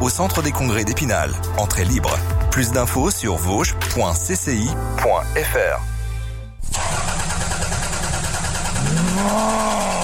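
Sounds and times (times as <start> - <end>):
speech: 0.0 - 5.9, 9.2 - 9.8
car engine cranking and catching: 6.6 - 10.0.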